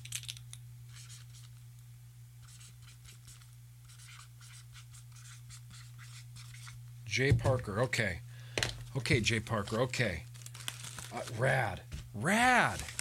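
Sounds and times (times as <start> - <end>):
low steady hum: 0.0 - 13.0
marker writing a name on a bag: 2.4 - 6.7
speech: 7.2 - 8.3, 9.0 - 10.3, 11.1 - 12.9.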